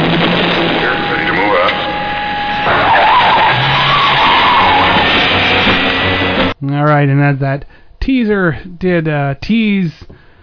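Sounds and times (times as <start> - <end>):
car engine roaring: 0.0 - 6.6
car tire skidding: 0.0 - 6.6
speech: 6.8 - 10.3.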